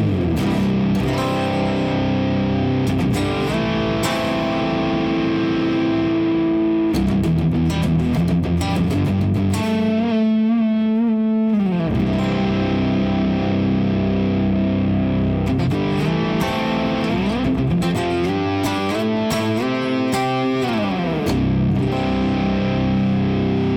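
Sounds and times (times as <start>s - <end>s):
electric guitar through fuzz pedal into cabinet playing distorted chords and riffs: 0.0s - 23.7s.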